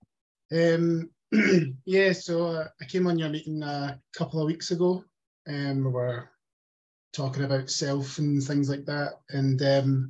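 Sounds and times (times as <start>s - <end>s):
speech: 0.5s - 6.3s, 7.1s - 10.0s
throat clearing by a person who vapes: 1.3s - 1.8s.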